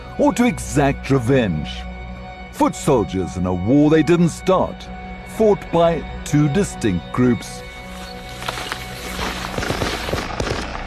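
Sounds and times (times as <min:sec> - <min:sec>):
speech: 0:00.2 - 0:01.9, 0:02.6 - 0:07.7
gunshots: 0:09.6 - 0:10.8.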